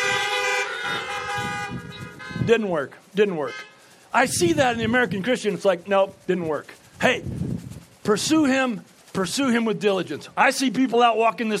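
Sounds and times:
car horn honking: 0.0s - 2.6s, 3.4s - 3.8s
speech: 2.4s - 11.5s.

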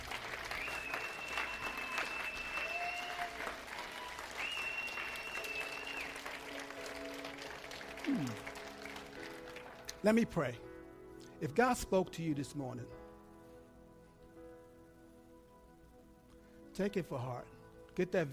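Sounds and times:
cheers: 0.0s - 9.0s
large crowd applauding: 0.0s - 10.2s
faint whistles: 0.4s - 6.4s
speech: 10.0s - 10.7s, 11.4s - 13.0s, 16.8s - 18.3s.

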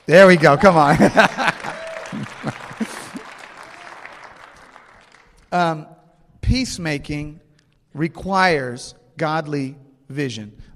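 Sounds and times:
audience in a church clapping: 0.0s - 5.6s
speech: 0.1s - 2.7s, 5.5s - 5.9s, 6.5s - 10.7s
laughter: 0.2s - 3.6s.

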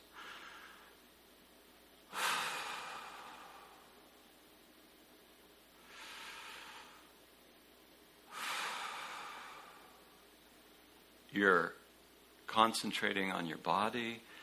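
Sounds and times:
slow deep breaths: 0.0s - 1.1s, 2.1s - 4.3s, 5.8s - 7.2s, 8.3s - 10.3s, 14.2s - 14.4s
speech: 11.3s - 11.8s, 12.5s - 14.3s.

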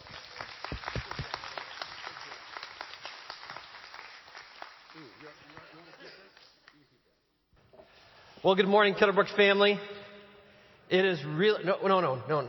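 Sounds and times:
audience applause: 0.0s - 6.4s
speech: 8.4s - 10.0s, 10.9s - 12.4s.

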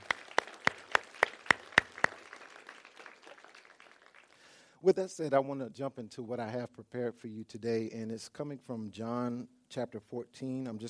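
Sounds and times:
audience clapping in unison: 0.0s - 4.7s
speech: 4.8s - 10.8s.

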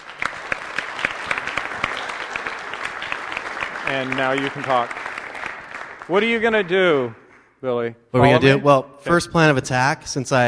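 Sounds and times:
audience clapping steadily: 0.0s - 7.3s
speech: 3.9s - 5.0s, 6.1s - 10.4s.

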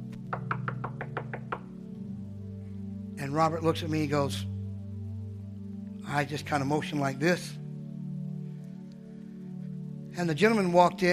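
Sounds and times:
knocking on a canteen door in Lancaster: 0.3s - 1.7s
speech: 3.3s - 4.5s, 6.1s - 7.6s, 10.2s - 11.1s.

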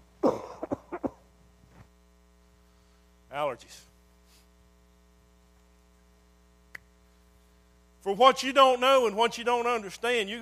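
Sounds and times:
person coughing throaty coughs: 0.2s - 1.3s
speech: 3.5s - 3.9s, 8.0s - 10.4s.

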